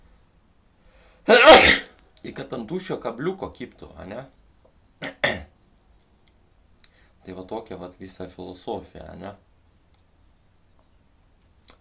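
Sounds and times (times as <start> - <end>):
human sneeze: 1.3 - 2.0
speech: 2.2 - 4.4, 7.3 - 9.5.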